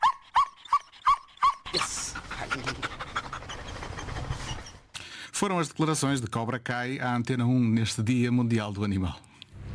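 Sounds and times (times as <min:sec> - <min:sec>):
female police dog whimpering yips at a microphone in a radio studio: 0:00.0 - 0:01.8, 0:02.6 - 0:04.9
police dog panting and snuffling: 0:01.7 - 0:04.9
speech: 0:05.4 - 0:09.3.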